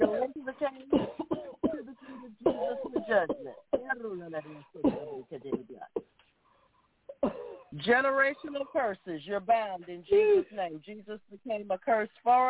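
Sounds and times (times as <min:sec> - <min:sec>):
several people coughing: 0:00.0 - 0:04.0, 0:04.7 - 0:06.2, 0:07.1 - 0:07.8
speech: 0:00.6 - 0:01.0, 0:03.1 - 0:05.9, 0:07.9 - 0:12.4.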